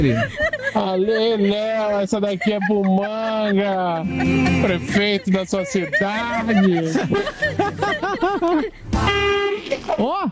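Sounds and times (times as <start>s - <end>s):
laughter: 0.0s - 10.1s
noise: 0.0s - 10.3s
speech: 0.0s - 10.3s
strange-sounding car horn: 9.0s - 9.7s.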